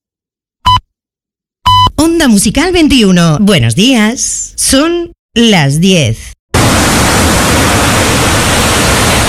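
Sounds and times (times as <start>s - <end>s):
speech: 2.0s - 6.4s
ocean surf breaking on a sandy beach: 6.6s - 9.2s.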